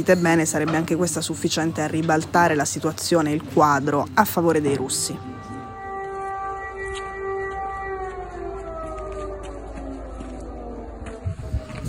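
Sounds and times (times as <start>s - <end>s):
speech: 0.0s - 5.5s
air raid siren wailing with a downward sliding tone: 3.4s - 11.8s.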